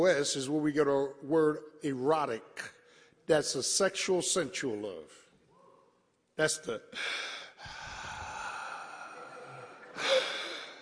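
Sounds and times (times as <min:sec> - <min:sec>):
speech: 0:00.0 - 0:05.2, 0:06.4 - 0:07.4
person imitating raspy breathing of someone on a breathing machine: 0:06.9 - 0:10.8.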